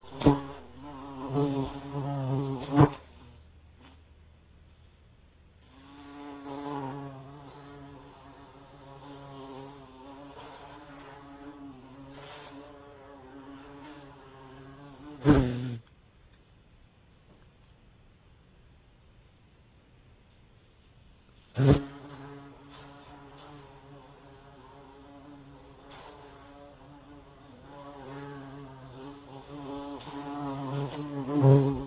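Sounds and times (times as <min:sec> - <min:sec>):
bee buzzing: 0:00.0 - 0:03.4, 0:05.7 - 0:15.9, 0:21.6 - 0:31.8.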